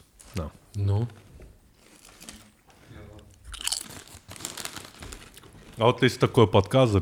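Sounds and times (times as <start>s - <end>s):
speech: 0.4s - 1.3s, 5.8s - 7.0s
potato chips being bitten and chewed: 1.8s - 2.6s, 3.5s - 5.5s.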